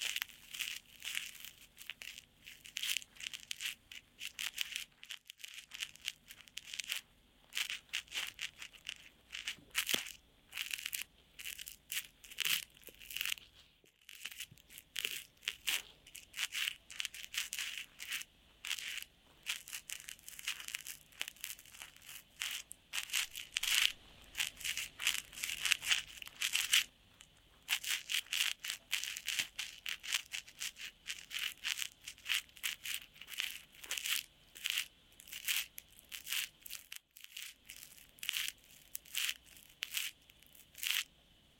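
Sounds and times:
deep inner ear cleaning scrapes and crinkles: 0.0s - 41.1s
faint low hum: 0.0s - 41.5s.

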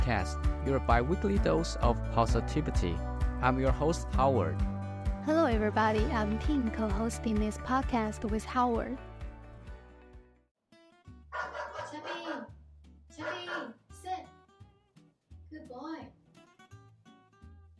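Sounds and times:
speech: 0.1s - 9.1s
dog barking in loud sharp bursts: 11.3s - 12.6s, 13.2s - 13.8s.

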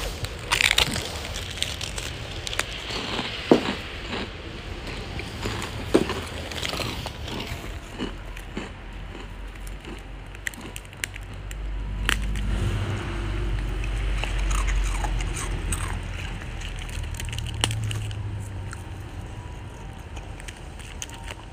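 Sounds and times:
Japanese rice cracker senbei being bitten and chewed: 0.0s - 21.5s
low rumbling background: 0.0s - 21.5s.

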